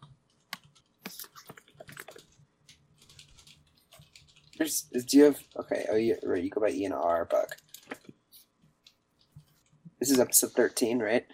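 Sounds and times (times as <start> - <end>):
fingers typing on a computer keyboard: 0.4 - 6.1
speech: 4.6 - 7.7, 10.1 - 11.3.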